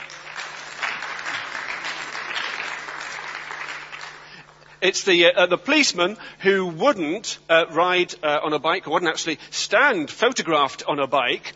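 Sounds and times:
audience applause: 0.0s - 4.3s
speech: 4.8s - 11.5s.

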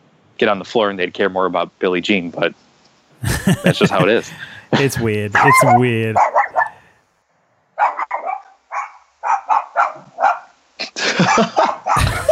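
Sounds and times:
speech: 0.4s - 2.6s, 3.2s - 6.4s
laughter: 3.2s - 6.2s, 11.0s - 12.2s
dog barking: 5.4s - 6.8s, 7.8s - 10.6s, 11.2s - 12.2s.

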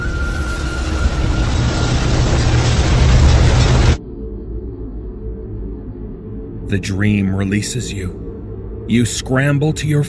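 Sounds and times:
massive bridge tearing apart with deep groan: 0.8s - 4.0s
speech: 6.7s - 8.3s, 8.9s - 10.0s.

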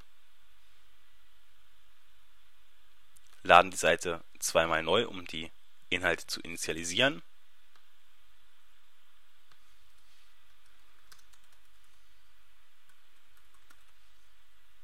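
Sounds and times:
speech: 3.5s - 7.3s
typing on a computer keyboard: 9.9s - 12.0s, 12.9s - 14.0s.

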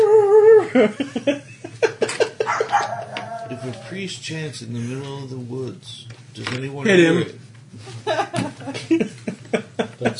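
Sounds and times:
speech: 0.7s - 1.5s, 3.7s - 9.4s, 10.0s - 10.1s
chihuahua yipping and barking: 2.5s - 3.6s
chihuahua drawn-out high whine: 2.5s - 3.9s.

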